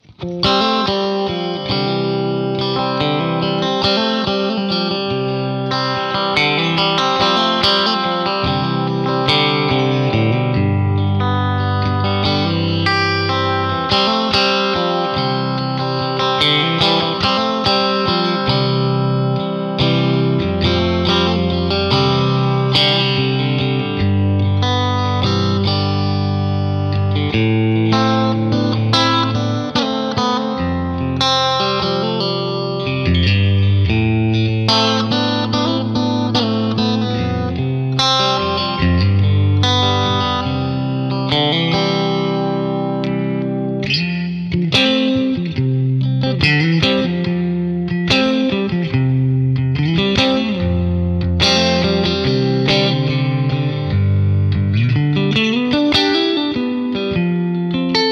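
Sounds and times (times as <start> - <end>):
clean Stratocaster electric guitar: 0.0 - 58.1.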